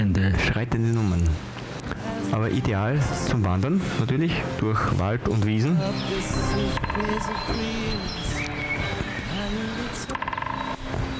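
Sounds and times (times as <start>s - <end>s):
speech: 0.6s - 1.5s, 2.3s - 8.4s
birds chirping: 4.9s - 11.1s
woodpecker drumming on wood: 6.4s - 11.1s.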